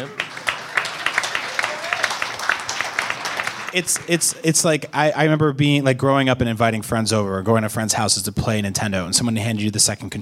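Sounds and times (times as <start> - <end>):
live audience applauding: 0.0 - 4.5
speech: 3.7 - 10.2.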